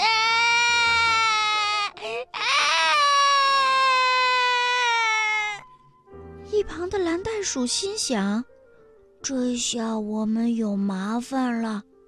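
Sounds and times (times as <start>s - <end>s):
small child wailing loudly: 0.0s - 5.6s
speech: 6.7s - 8.5s, 9.2s - 11.9s.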